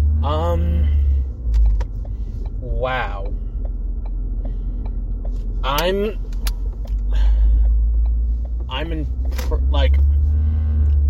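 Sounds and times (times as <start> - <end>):
car engine rumble inside a moving car leaving a movie theater: 0.0 - 11.0
speech: 2.8 - 3.4, 5.6 - 6.2, 8.7 - 10.1.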